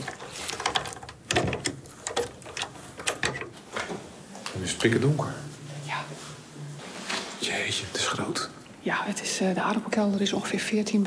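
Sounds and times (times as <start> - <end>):
key turning in an old door lock of a former underground potato cellar: 0.0 - 3.6
speech: 4.6 - 5.4, 7.8 - 11.0.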